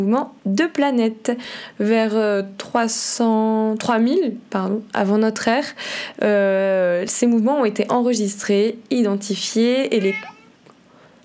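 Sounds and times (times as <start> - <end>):
speech: 0.0 - 10.4
cat meowing: 10.0 - 10.6.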